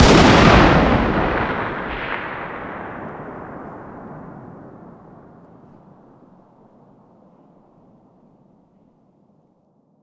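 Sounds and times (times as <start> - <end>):
distant 338 Lapua Magnum rifle shot outdoors: 0.0 - 5.8.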